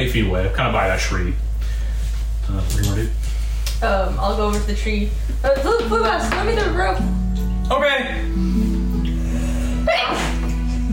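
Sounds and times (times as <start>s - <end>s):
speech: 0.0s - 1.5s, 2.5s - 8.7s, 9.8s - 10.4s
steady low hum: 0.0s - 10.9s
sneeze: 9.9s - 10.5s.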